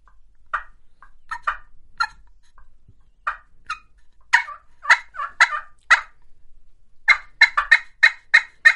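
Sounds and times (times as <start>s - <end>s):
hand turkey call clucks and yelps: 0.5s - 2.2s, 3.2s - 6.2s, 7.1s - 8.7s.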